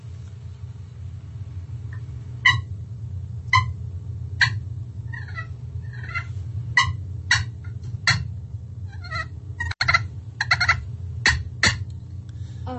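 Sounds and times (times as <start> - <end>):
steady low hum: 0.0 - 12.7
slate turkey call imitating hen purrs: 1.9 - 2.8, 3.4 - 11.9
slate turkey call imitating hen clucks: 2.4 - 2.7, 3.5 - 3.8, 4.4 - 8.3, 8.9 - 11.9.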